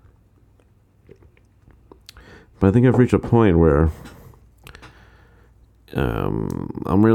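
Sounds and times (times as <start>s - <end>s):
low steady hum: 0.0s - 7.1s
person sipping water: 0.6s - 2.3s
speech: 2.6s - 4.1s, 6.0s - 7.1s.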